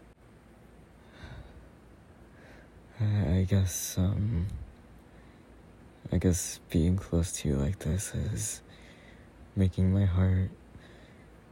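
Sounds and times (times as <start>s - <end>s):
heavy breathing with voiced panting huffs: 1.0s - 3.0s, 8.6s - 9.4s, 10.7s - 11.4s
speech: 3.0s - 4.7s, 6.1s - 8.8s, 9.6s - 10.6s.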